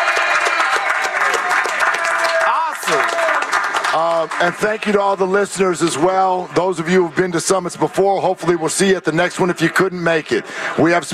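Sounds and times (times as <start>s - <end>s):
crowd clapping: 0.0s - 7.2s
speech: 3.9s - 11.1s.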